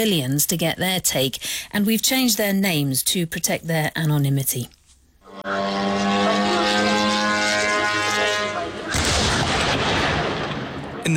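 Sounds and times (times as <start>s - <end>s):
speech: 0.0s - 4.8s, 5.4s - 7.0s
Ukrainian drone engine droning loudly: 5.2s - 9.0s
harsh rumbling blast noise: 5.9s - 11.1s
drone crashing into a retailer's warehouse in Elektrostal: 8.9s - 11.1s.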